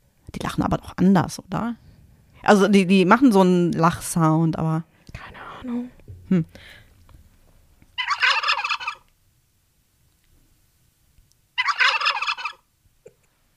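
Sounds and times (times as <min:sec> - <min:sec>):
speech: 0:00.6 - 0:01.8, 0:02.4 - 0:06.8
turkey gobbling: 0:08.0 - 0:09.1, 0:11.6 - 0:12.6.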